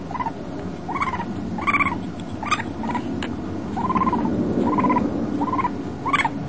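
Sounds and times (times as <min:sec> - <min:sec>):
raccoon squeaky chattering: 0:00.0 - 0:06.4.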